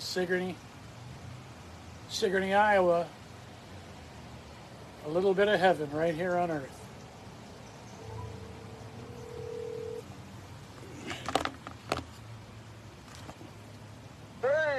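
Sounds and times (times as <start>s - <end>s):
speech: 0.2s - 0.7s, 2.1s - 3.2s, 5.0s - 6.8s
phone dial tone: 8.0s - 10.0s.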